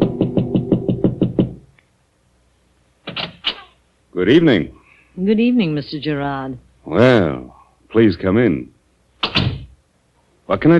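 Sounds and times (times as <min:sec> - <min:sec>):
knocks on a door: 0:00.0 - 0:01.6, 0:09.2 - 0:09.7
speech: 0:04.2 - 0:08.7, 0:10.5 - 0:10.7.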